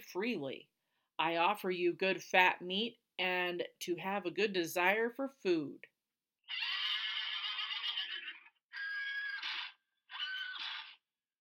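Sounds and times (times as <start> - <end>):
speech: 0.1 - 5.9, 6.5 - 6.8
horse neighing: 6.5 - 11.0.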